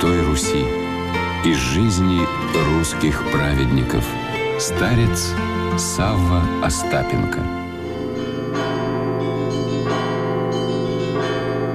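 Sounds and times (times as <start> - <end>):
church bells ringing: 0.0 - 11.7
speech: 1.4 - 7.6.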